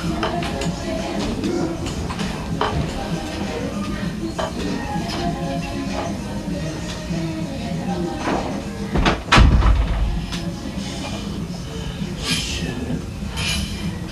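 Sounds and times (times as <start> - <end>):
music playing next door: 0.0 - 14.1
door shutting with a solid thud: 8.9 - 10.3.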